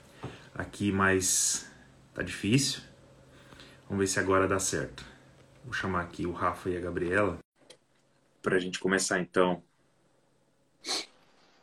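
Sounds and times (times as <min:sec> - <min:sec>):
quiet hiss: 0:00.0 - 0:11.6
speech: 0:00.6 - 0:02.9, 0:03.9 - 0:07.4, 0:08.4 - 0:09.7, 0:10.8 - 0:11.1
sneeze: 0:10.8 - 0:11.2.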